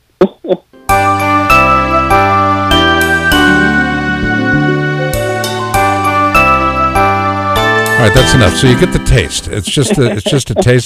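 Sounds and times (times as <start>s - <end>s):
speech: 0.5s - 1.1s, 8.0s - 10.8s
recording of a Christmas song with bell-like tones: 0.8s - 10.7s.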